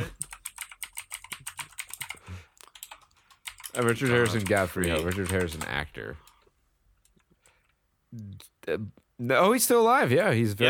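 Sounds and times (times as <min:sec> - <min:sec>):
rapid typing on a computer keyboard: 0:00.0 - 0:06.4
speech: 0:03.8 - 0:06.3, 0:08.1 - 0:10.6.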